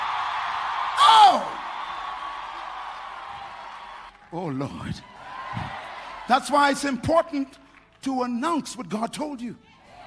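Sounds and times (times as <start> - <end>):
audience shouting hallelujah: 0.0 - 6.8
crowd cheering: 0.0 - 7.4
person crying out: 1.0 - 1.6
speech: 4.3 - 9.7.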